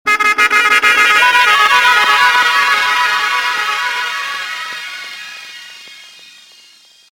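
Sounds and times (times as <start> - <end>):
triple horn: 0.0 - 5.2.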